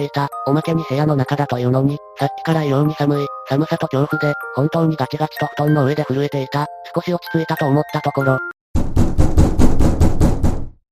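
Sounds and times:
speech: 0.0 - 8.9
heavy pounding on a front door: 8.8 - 10.8.

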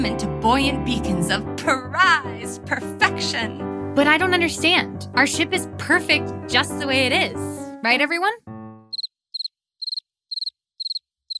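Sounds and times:
speech: 0.0 - 8.5
crickets chirping: 8.9 - 11.3.

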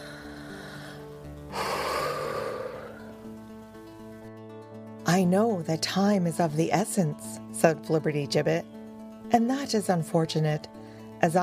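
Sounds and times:
very deep breath: 0.0 - 3.2, 10.8 - 11.2
soft tonal background: 0.0 - 11.4
speech: 5.1 - 8.7, 9.3 - 11.4.

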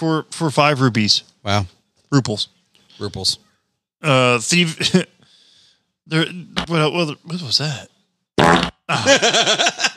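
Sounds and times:
speech: 0.0 - 3.4, 4.0 - 5.1, 6.1 - 9.9
fart: 8.4 - 8.9
laughter: 8.9 - 9.9.

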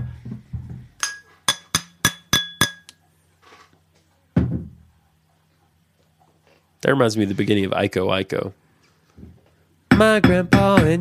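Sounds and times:
empty glass being struck: 1.0 - 3.0
empty glass knocking against something harder: 4.4 - 4.8
speech: 6.8 - 8.6, 10.0 - 11.0.

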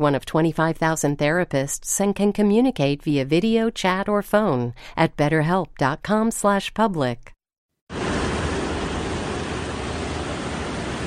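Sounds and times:
speech: 0.0 - 7.4
floodwater from torrential hurricane-remnant rain gushing into a subway system: 7.9 - 11.0.

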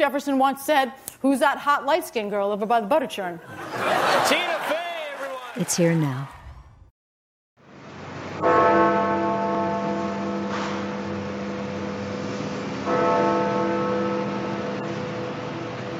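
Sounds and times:
speech: 0.0 - 4.7, 5.6 - 6.4
laughter: 3.4 - 6.0
Big Ben clock tower bell chiming: 8.4 - 15.9.

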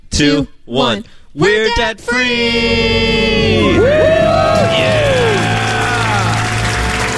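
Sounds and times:
speech: 0.2 - 5.0
loud studio crowd cheering with whoops and shrieks: 2.3 - 7.1.

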